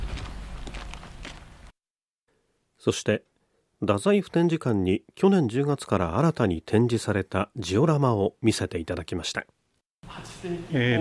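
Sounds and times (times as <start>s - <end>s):
footsteps of people walking toward an exhibition hall: 0.0s - 1.8s
speech: 2.8s - 10.9s.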